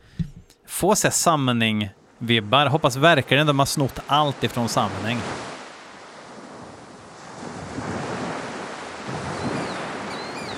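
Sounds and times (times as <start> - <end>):
speech: 0.8 - 5.5
strong wind blowing in gusts: 5.2 - 10.5.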